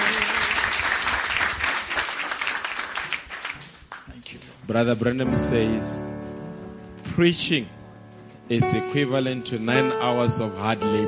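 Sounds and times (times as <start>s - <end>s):
church audience applauding a preacher: 0.0s - 4.4s
speech: 4.7s - 6.1s, 7.2s - 7.8s, 8.5s - 11.0s.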